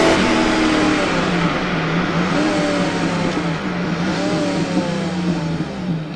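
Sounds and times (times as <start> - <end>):
vehicle brute slowdown: 0.0 - 6.1.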